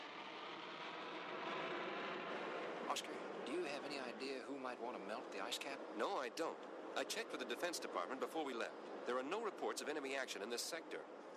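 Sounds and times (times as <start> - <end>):
Air Force jet flying north toward the polar ice cap: 0.0 - 4.3
speech: 2.9 - 11.2.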